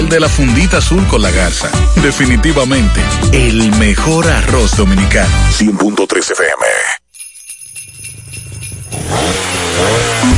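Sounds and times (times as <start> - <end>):
speech: 0.1 - 7.0
car engine starting up and revving hard: 8.9 - 10.3.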